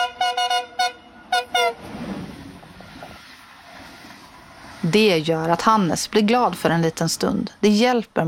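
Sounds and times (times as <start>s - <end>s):
train horn sounded by the driver at a station platform: 0.0s - 2.0s
low rumbling of the train: 0.0s - 7.6s
speech: 4.8s - 8.2s.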